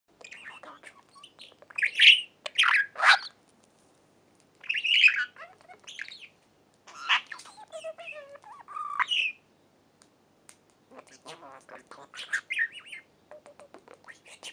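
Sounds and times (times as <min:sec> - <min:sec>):
budgerigar warbling: 0:00.4 - 0:03.4, 0:04.6 - 0:06.3, 0:06.9 - 0:09.4, 0:10.9 - 0:14.5.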